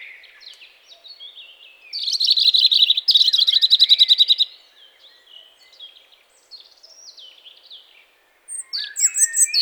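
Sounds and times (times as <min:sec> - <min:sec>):
European robin Erithacus rubecula singing a high chattering trill: 0:01.2 - 0:04.6, 0:08.5 - 0:09.6.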